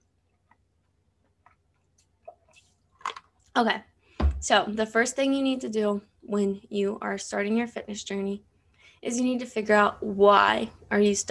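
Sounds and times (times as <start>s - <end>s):
sipping and swallowing of water: 0.1s - 3.5s
speech: 3.6s - 11.3s.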